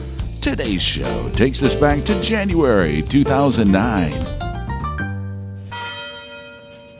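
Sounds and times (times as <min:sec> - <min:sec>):
speech: 0:00.4 - 0:04.4
University Tower chime bells ringing: 0:05.6 - 0:06.9.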